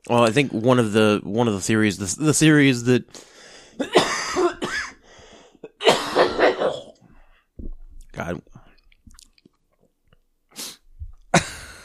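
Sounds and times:
speech: 0.0s - 4.0s, 8.2s - 8.5s
person clearing throat: 3.8s - 5.0s, 5.6s - 7.0s, 11.3s - 11.8s
person coughing with a tickle in the throat: 3.8s - 5.0s, 5.6s - 7.0s, 11.3s - 11.8s.

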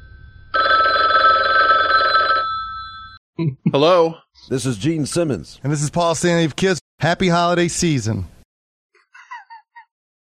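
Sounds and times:
telephone bell ringing: 0.5s - 3.2s
speech: 3.4s - 8.3s.

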